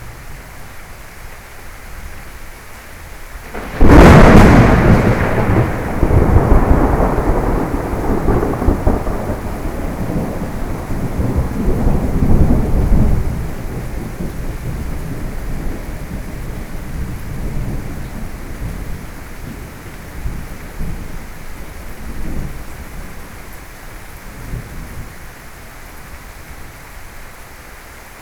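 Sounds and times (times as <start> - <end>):
loud thunder: 3.4 - 21.2.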